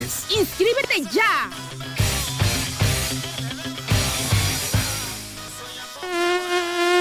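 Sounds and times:
rhythmic thumping music: 0.0 - 5.8
speech: 0.4 - 1.8
mosquito buzzing: 5.9 - 6.9.

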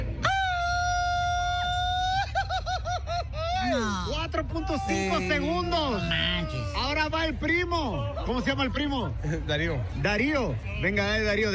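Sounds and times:
laughter: 0.3 - 6.8, 7.8 - 9.8
Mexican grito yelled by a man in a grito battle: 3.6 - 8.2
speech: 4.4 - 11.5.

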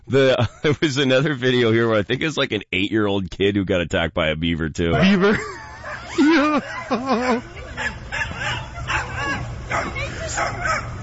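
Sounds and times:
laughter: 0.1 - 1.9, 5.0 - 10.4
speech: 0.1 - 5.7, 6.4 - 7.6
small dogs barking and yipping: 5.8 - 11.0.

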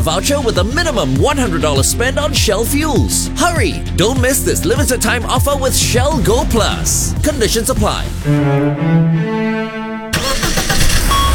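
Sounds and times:
speech: 0.0 - 9.8
car engine cranking and starting: 5.6 - 11.3.

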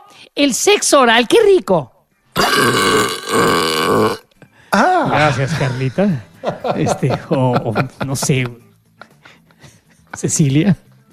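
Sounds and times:
speech: 0.1 - 1.9, 2.6 - 8.7, 10.2 - 10.9
loud drawn-out belch sound effect: 2.4 - 4.3
laughter: 4.8 - 10.2.

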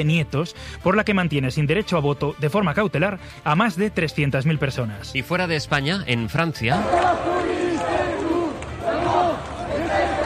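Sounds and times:
speech: 0.0 - 7.6
protest crowd chanting and shouting in the streets of Lyon, France: 6.6 - 10.2.

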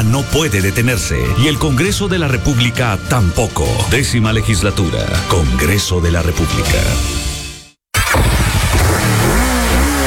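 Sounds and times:
speech: 0.1 - 7.3
new motorcycle engine starting and revving: 8.0 - 10.0.

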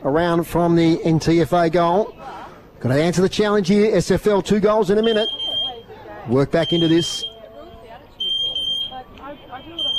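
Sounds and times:
speech: 0.0 - 5.4, 6.3 - 7.3
crowd noise: 0.0 - 9.9
shrill electronic alarm tone: 6.6 - 7.3, 8.2 - 9.9.

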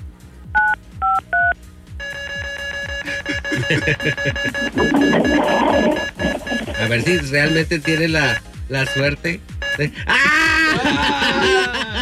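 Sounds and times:
telephone touch-tone beeps: 0.6 - 9.8
steady electronic telephone tones: 2.0 - 10.0
laughter: 3.0 - 5.6, 9.8 - 12.0
speech: 3.6 - 11.8.

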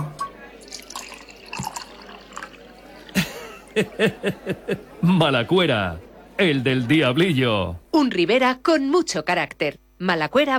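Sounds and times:
red wine pouring into a glass: 0.2 - 3.8
laughter: 2.8 - 6.8
speech: 3.8 - 10.5.

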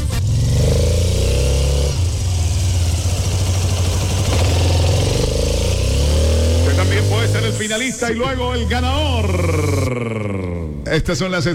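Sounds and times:
motorcycle engine revving: 0.0 - 10.9
speech: 7.6 - 9.8, 10.9 - 11.5.

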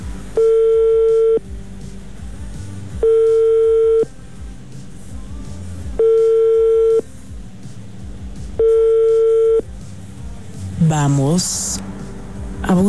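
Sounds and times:
low hum: 0.0 - 12.8
ringback tone of an outgoing telephone call: 0.4 - 1.4, 3.0 - 4.1, 6.0 - 7.0, 8.6 - 9.6
speech: 11.0 - 11.9, 12.7 - 12.8.

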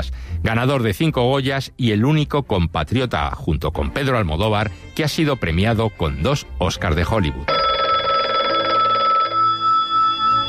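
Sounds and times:
speech: 0.0 - 7.7
telephone bell ringing with electronic warble: 7.5 - 10.4.

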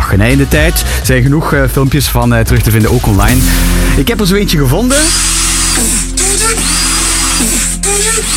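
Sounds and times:
speech: 0.1 - 6.0
electric drill whining in rhythmic bursts mimicking a dubstep beat: 4.9 - 8.3.

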